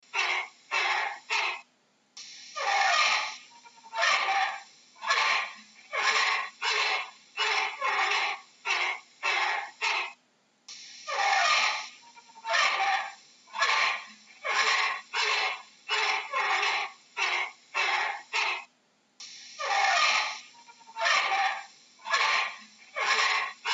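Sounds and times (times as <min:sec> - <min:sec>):
orangutan call: 0:00.1 - 0:01.6, 0:02.6 - 0:10.2, 0:11.0 - 0:18.7, 0:19.6 - 0:23.7.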